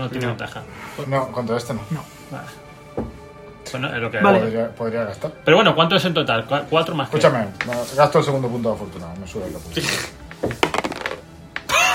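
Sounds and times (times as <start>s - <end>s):
speech: 0.0s - 2.7s, 3.7s - 10.6s
dice tumbling across a hard tabletop: 10.5s - 11.3s.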